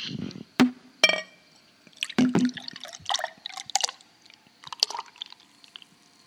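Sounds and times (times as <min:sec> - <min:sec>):
glassy clinks: 0:01.0 - 0:01.6
beer glugging and splashing as poured into a glass: 0:02.0 - 0:04.0, 0:04.6 - 0:05.9.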